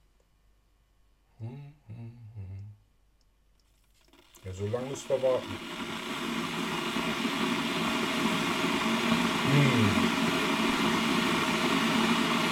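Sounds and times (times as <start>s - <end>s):
speech: 4.4s - 6.4s
steady broadband rumbling hiss: 4.5s - 12.5s.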